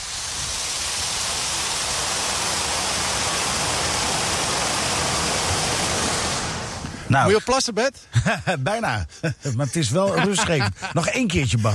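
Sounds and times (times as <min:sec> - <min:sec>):
river water rushing over a weir: 0:00.0 - 0:07.0
speech: 0:07.1 - 0:11.7
laughter: 0:08.2 - 0:11.6.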